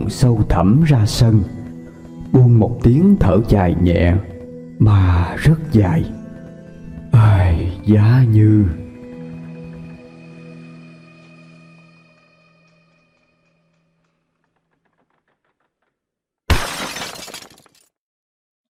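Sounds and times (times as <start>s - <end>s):
speech: 0.1s - 1.6s, 2.3s - 6.2s, 7.2s - 8.8s
meal tray of bowls and chopsticks kicked over, crockery crashing and shattering: 16.5s - 17.9s.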